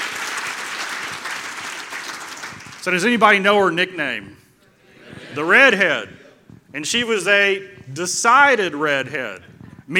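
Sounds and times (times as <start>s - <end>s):
audience applause: 0.0s - 2.8s
speech: 2.8s - 4.4s, 5.4s - 9.9s
laughter: 4.7s - 6.5s.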